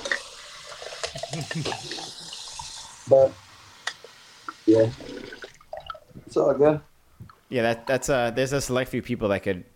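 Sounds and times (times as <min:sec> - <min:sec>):
water pouring: 0:00.0 - 0:06.2
speech: 0:01.2 - 0:02.2, 0:03.1 - 0:03.4, 0:04.7 - 0:05.2, 0:06.3 - 0:06.9, 0:07.5 - 0:09.7.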